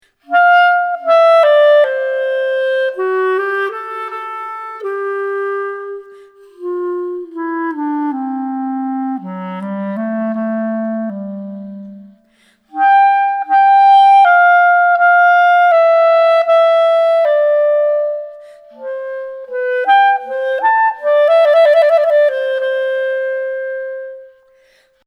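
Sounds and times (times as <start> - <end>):
clarinet: 0.0 - 25.0.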